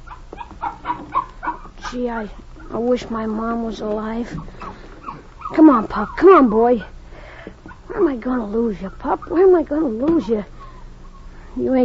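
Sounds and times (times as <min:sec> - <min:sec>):
puppy yapping: 0:00.0 - 0:02.0, 0:04.4 - 0:06.7, 0:07.6 - 0:08.1
speech: 0:01.9 - 0:04.6, 0:05.5 - 0:06.9, 0:08.0 - 0:10.5, 0:11.6 - 0:11.8.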